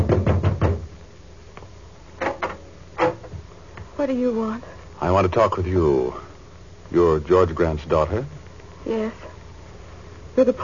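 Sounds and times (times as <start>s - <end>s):
knocking on a wooden door: 0.0s - 1.0s
speech: 4.0s - 6.3s, 6.9s - 9.3s, 10.4s - 10.6s.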